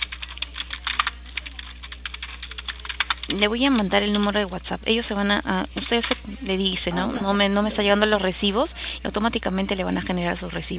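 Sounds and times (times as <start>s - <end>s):
computer keyboard keys clicking as a message is typed: 0.0s - 5.0s, 5.8s - 6.6s
low steady hum: 0.0s - 10.7s
speech: 3.3s - 10.7s.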